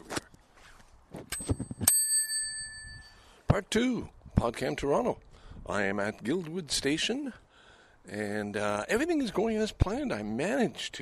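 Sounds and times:
fumbling rattling handling noise: 0:01.1 - 0:03.1
single bright metallic bell ding: 0:01.8 - 0:03.2
speech: 0:03.6 - 0:07.4, 0:08.0 - 0:11.0.

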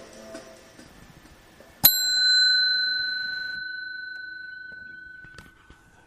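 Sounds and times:
bicycle bell ringing at Bluffers Park in Scarborough: 0:01.8 - 0:05.8.

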